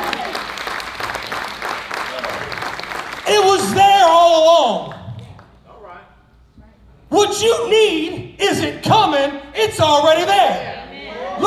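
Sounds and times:
audience applauding: 0.0s - 4.2s
speech: 7.2s - 10.7s.

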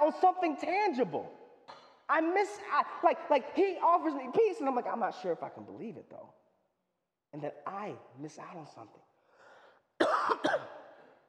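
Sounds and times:
speech: 0.1s - 1.4s, 2.1s - 6.4s, 7.3s - 9.1s, 10.0s - 10.8s
harsh coughs: 10.0s - 11.2s.

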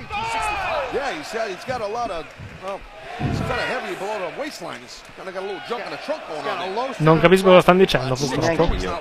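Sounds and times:
large arena crowd chanting and shouting: 0.0s - 8.9s
speech: 1.0s - 8.9s
wrestling thuds and slams: 2.4s - 3.7s.

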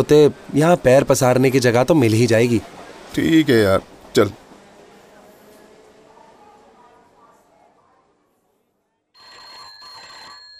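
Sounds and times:
speech: 0.0s - 4.4s
murmuring voices: 3.8s - 9.1s
telephone bell ringing: 9.2s - 10.5s.

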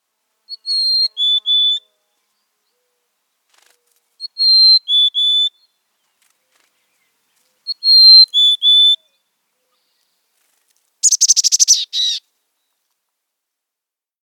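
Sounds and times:
mountain chickadee singing clear high whistled phrases: 4.2s - 5.7s, 7.7s - 9.2s, 11.0s - 12.2s
mountain chickadee buzzy chattering notes: 11.0s - 12.2s.

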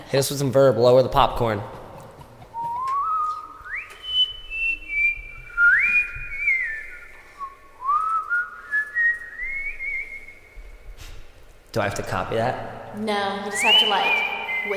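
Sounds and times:
faint hum: 0.0s - 14.7s
speech: 0.1s - 1.8s, 11.7s - 14.7s
person whistling a sliding wavering tune with reverb: 2.5s - 10.6s, 13.6s - 14.7s.

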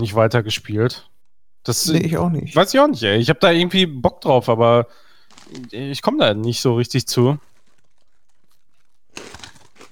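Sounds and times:
speech: 0.0s - 7.5s
someone eating nuts with crunching and crinkling: 5.2s - 9.9s.

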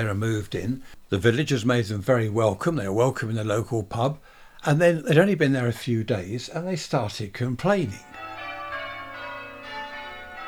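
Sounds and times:
speech: 0.0s - 8.2s
church bells ringing in a dense overlapping peal: 7.9s - 10.4s.

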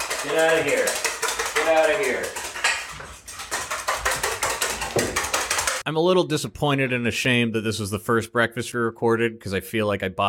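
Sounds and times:
two metal pans clanking and clattering: 0.0s - 5.8s
speech: 0.2s - 2.4s, 5.8s - 10.2s.

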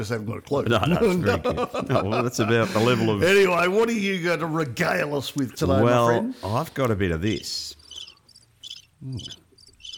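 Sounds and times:
speech: 0.0s - 7.8s, 9.0s - 9.4s
laughter: 0.7s - 3.4s
crickets chirping outdoors: 7.8s - 9.9s.

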